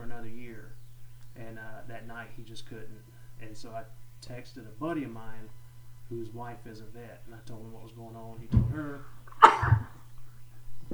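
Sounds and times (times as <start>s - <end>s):
faint low hum: 0.0s - 10.9s
speech: 1.6s - 9.8s
dog sneezing close to the microphone: 9.3s - 10.0s.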